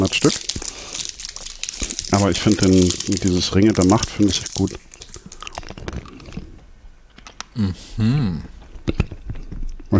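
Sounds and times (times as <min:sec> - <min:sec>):
wet chewing of a gummy candy: 0:00.0 - 0:06.6
speech: 0:00.1 - 0:00.8, 0:02.1 - 0:04.9, 0:07.6 - 0:09.0
person humming: 0:07.6 - 0:08.5.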